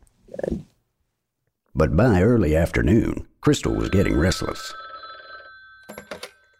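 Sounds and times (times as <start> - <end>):
speech: 1.8 - 4.8
telephone ringing with a bright electronic tone: 3.6 - 6.5.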